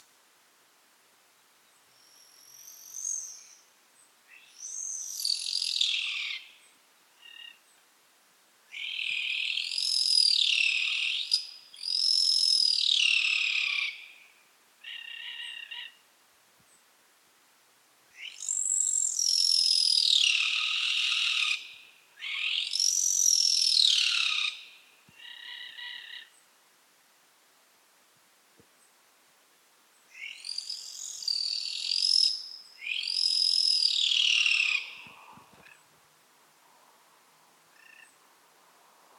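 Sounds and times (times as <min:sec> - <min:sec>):
Greater Sooty Owl Tyto tenebricosa calling: 0:04.3 - 0:06.6, 0:08.7 - 0:16.0, 0:18.1 - 0:26.4, 0:30.1 - 0:35.9, 0:37.7 - 0:38.2.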